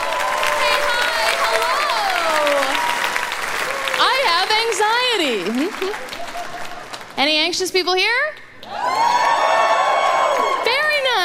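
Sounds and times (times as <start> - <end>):
audience cheering and whooping: 0.0 - 4.4, 5.5 - 6.8, 8.6 - 11.2
speech: 4.7 - 6.2, 7.2 - 9.4.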